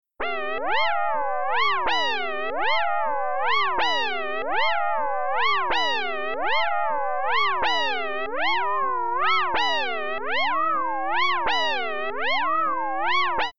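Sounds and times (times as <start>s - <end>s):
FM synth sounds with mod depth: 0.3s - 13.5s.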